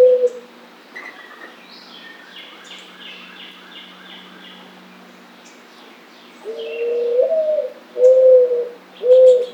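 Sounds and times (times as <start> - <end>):
Mourning dove cooing: 0.0 - 0.5, 6.4 - 9.5
other birds chirping high: 0.0 - 7.3, 8.0 - 9.5.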